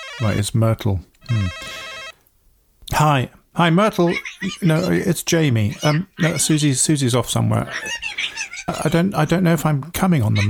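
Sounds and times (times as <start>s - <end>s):
mobile phone bright electronic ringtone: 0.0s - 0.4s, 1.3s - 2.2s
quiet noise: 0.0s - 10.4s
speech: 0.2s - 1.8s, 3.0s - 10.4s
laughter: 4.0s - 9.3s.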